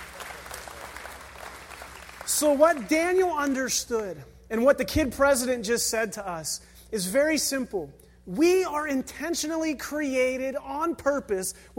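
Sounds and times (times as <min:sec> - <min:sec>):
audience clapping: 0:00.0 - 0:03.7
speech: 0:02.4 - 0:11.7.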